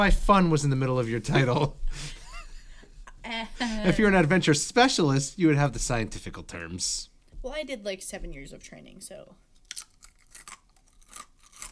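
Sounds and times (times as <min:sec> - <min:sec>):
speech: 0:00.0 - 0:02.2, 0:03.8 - 0:09.9
crunchy food being chewed: 0:09.6 - 0:11.7.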